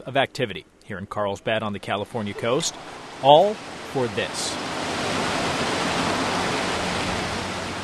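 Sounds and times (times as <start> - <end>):
speech: 0.0 - 4.8
seawater surging through a large pipe at a desalination plant in Carlsbad: 2.2 - 7.8.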